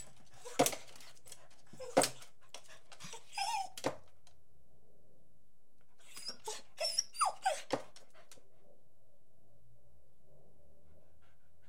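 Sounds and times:
beagle whimpering, whining and barking with short yelps: 0:03.0 - 0:04.0, 0:06.0 - 0:07.9.

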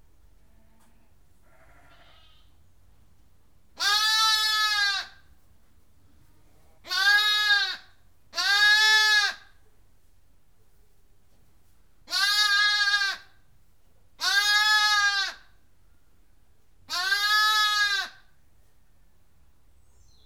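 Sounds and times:
lamb bleating: 0:01.4 - 0:02.6, 0:03.8 - 0:05.2, 0:06.8 - 0:09.5, 0:12.1 - 0:13.3, 0:14.2 - 0:15.5, 0:16.9 - 0:18.3.

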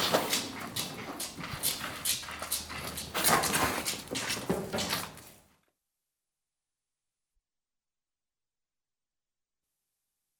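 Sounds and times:
cattle calves suckling with noisy slurps and smacking gulps: 0:00.0 - 0:05.2.

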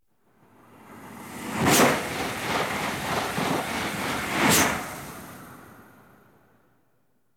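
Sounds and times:
diesel train passing: 0:00.7 - 0:06.2.

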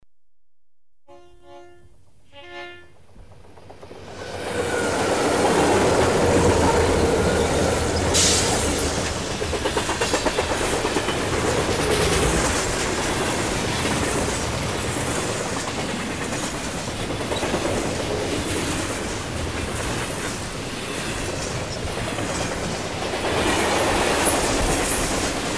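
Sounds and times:
freight train siren in the desert near Kingman Arizona: 0:01.1 - 0:03.0
freight train passing in the desert near Kingman Arizona: 0:01.1 - 0:25.5.

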